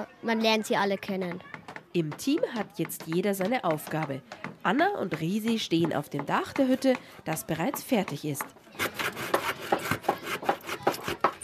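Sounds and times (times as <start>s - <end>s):
speech: 0.0s - 8.9s
hand saw cutting through wooden boards: 8.8s - 11.4s.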